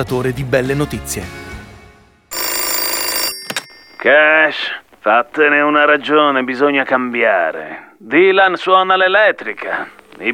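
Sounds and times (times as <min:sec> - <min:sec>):
speech: 0:00.0 - 0:01.4, 0:04.0 - 0:10.3
telephone bell ringing: 0:02.3 - 0:04.8.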